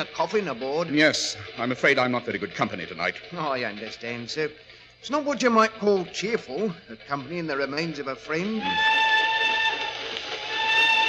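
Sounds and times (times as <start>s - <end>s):
speech: 0.0s - 9.0s
faint rail rumble: 0.0s - 11.0s
steam train whistle blowing at night: 8.4s - 11.0s.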